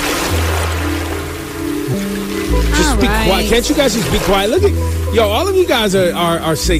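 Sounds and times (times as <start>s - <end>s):
flowing water rushing: 0.0s - 6.0s
speech: 2.9s - 6.7s.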